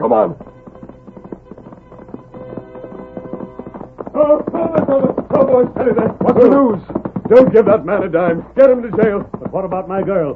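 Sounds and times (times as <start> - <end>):
speech: 0.0 - 0.4, 4.2 - 10.3
sustained tonal musical backdrop: 0.0 - 6.7
hoofbeats of a galloping horse with rider: 0.0 - 10.3.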